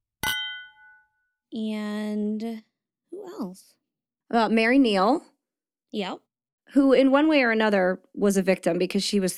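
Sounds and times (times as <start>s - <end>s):
glasses clinking in a toast: 0.2s - 1.2s
speech: 1.5s - 5.3s, 5.9s - 9.3s.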